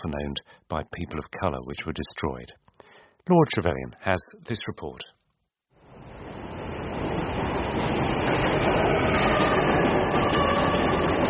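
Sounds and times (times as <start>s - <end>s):
speech: 0.0s - 5.2s
elevated subway train rumbling past overhead: 5.8s - 11.2s.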